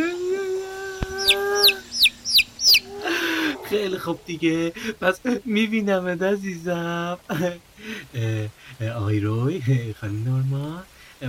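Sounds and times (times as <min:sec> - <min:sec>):
person imitating a chick with high-pitched peeps: 0:00.0 - 0:04.2
speech: 0:03.7 - 0:11.2.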